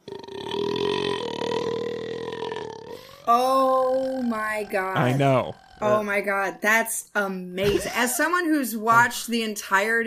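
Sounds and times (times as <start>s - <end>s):
long loud deep burp: 0.0s - 6.2s
speech: 3.2s - 10.0s.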